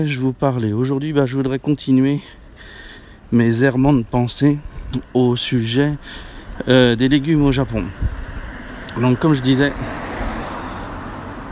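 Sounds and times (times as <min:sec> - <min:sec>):
speech: 0:00.0 - 0:02.4, 0:03.3 - 0:08.2, 0:09.0 - 0:10.0
car engine and tyre rumble passing by: 0:07.6 - 0:11.5.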